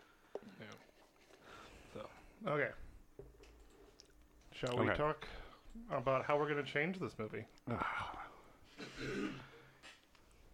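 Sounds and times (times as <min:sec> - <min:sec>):
speech: 0:00.4 - 0:00.9, 0:02.0 - 0:02.8, 0:04.6 - 0:08.2
person clearing throat: 0:08.7 - 0:09.7.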